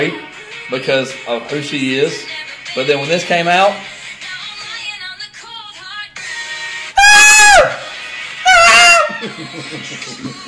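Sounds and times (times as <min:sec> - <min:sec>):
song music playing from a video: 0:00.0 - 0:10.4
speech: 0:00.1 - 0:03.9, 0:09.4 - 0:10.4
goat screaming in a song: 0:08.5 - 0:09.2
laughter: 0:08.8 - 0:10.4.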